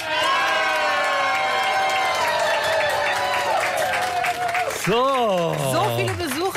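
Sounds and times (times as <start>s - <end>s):
whoops: 0.0s - 4.7s
live festival audience cheering and shouting at the Löwenwall in Braunschweig Germany: 0.0s - 6.3s
speech: 4.8s - 6.4s.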